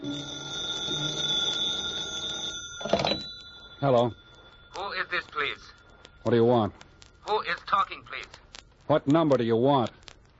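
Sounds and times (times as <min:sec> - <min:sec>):
telephone ringing: 0:00.0 - 0:08.2
speech: 0:03.8 - 0:04.2, 0:05.1 - 0:10.0.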